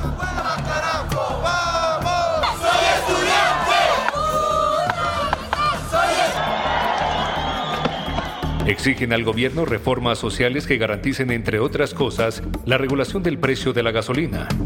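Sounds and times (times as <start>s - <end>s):
large crowd of protesters chanting and shouting: 0.0s - 8.9s
speech: 8.7s - 14.6s.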